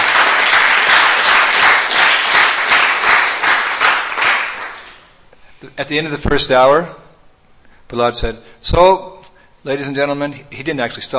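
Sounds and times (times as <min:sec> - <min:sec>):
crowd applauding: 0:00.0 - 0:05.1
speech: 0:05.8 - 0:07.0, 0:07.9 - 0:11.1.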